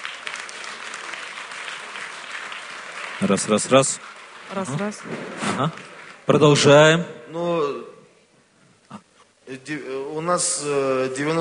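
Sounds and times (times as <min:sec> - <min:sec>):
audience applause: 0:00.0 - 0:06.7
speech: 0:03.2 - 0:07.9, 0:09.5 - 0:11.3.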